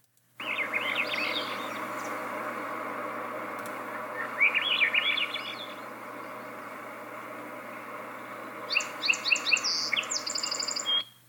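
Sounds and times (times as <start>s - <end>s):
steady hiss: 0.0s - 11.2s
Swainson's thrush singing flute-like spiralling phrases: 0.4s - 11.0s.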